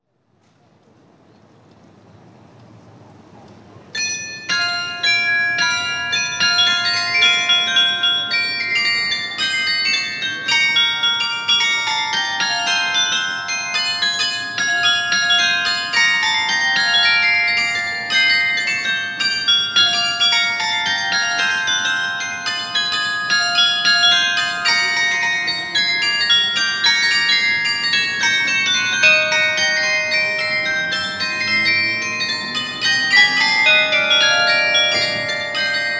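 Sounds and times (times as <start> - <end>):
carillon playing: 4.0 - 35.9.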